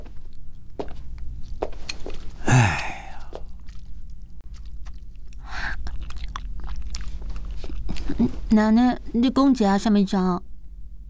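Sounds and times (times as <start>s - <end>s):
person chewing a chicken drumstick: 3.0s - 8.5s
speech: 8.2s - 10.5s.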